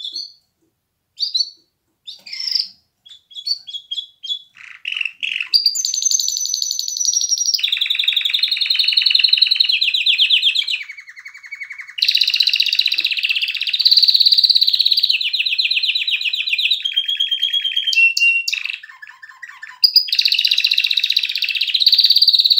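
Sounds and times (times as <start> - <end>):
canary song of long continuous rolling trills: 0.0 - 0.5, 1.2 - 22.5.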